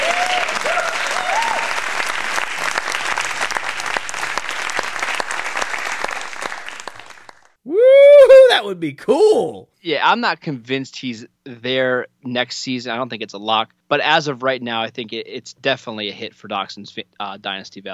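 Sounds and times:
crowd applauding in a game-show correct-answer effect: 0.0s - 7.6s
speech: 8.8s - 17.9s.

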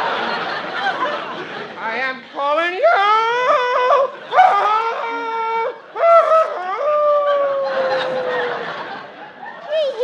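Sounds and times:
laughter: 0.0s - 2.0s, 2.8s - 10.0s
noise: 0.0s - 10.0s
person howling like a wolf: 3.1s - 8.6s.

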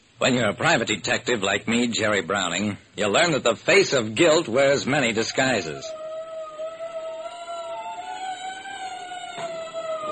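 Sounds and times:
faint hiss: 0.0s - 10.1s
speech: 0.2s - 6.0s
steady wailing siren: 5.3s - 10.1s.

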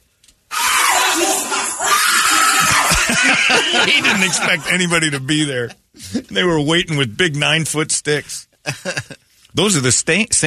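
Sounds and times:
person letting out a loud startled scream: 0.5s - 3.3s
laughter: 2.3s - 6.3s, 8.7s - 9.2s
speech: 3.4s - 10.4s.

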